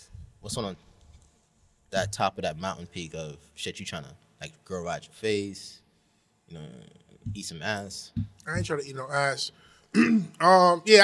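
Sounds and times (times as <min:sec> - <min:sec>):
speech: 0:00.4 - 0:00.9, 0:01.9 - 0:05.8, 0:06.5 - 0:11.0
throat clearing: 0:10.0 - 0:10.4.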